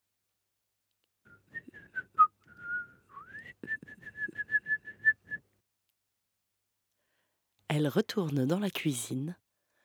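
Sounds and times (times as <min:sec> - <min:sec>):
person whistling a birdlike melody imitating a blackbird singing: 0:01.3 - 0:05.5
speech: 0:07.8 - 0:09.4.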